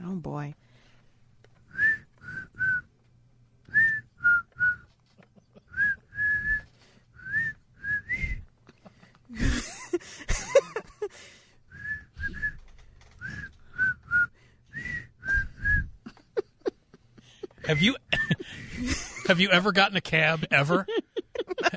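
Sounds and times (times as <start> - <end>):
speech: 0.2 - 0.6, 17.8 - 18.0, 19.3 - 20.9
person whistling a song's tune: 1.7 - 2.9, 3.7 - 4.9, 5.7 - 8.5, 11.7 - 12.6, 13.2 - 16.0
breathy noise or laughter: 5.1 - 6.1, 8.7 - 11.4, 16.0 - 19.3, 20.3 - 21.7.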